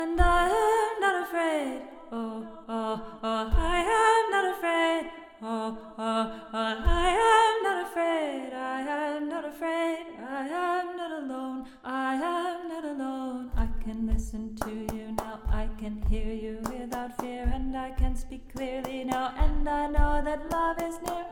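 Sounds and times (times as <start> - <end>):
alto voice singing: 0.0 - 21.2.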